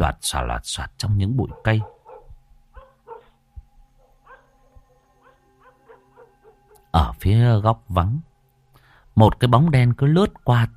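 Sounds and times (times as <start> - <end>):
speech: 0.0 - 2.0, 6.9 - 8.3, 9.2 - 10.7
low steady hum: 0.0 - 10.7
dog barking at night: 1.4 - 3.4, 4.2 - 4.5, 5.2 - 6.7.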